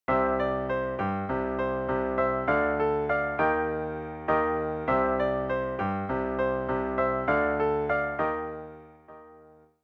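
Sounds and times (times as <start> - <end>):
piano vamp playing chords C Dm Eb: 0.1 - 9.7.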